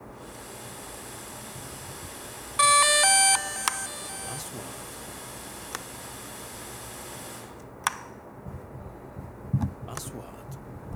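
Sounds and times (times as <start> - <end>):
Mavic drone starting up: 0.3 - 7.5.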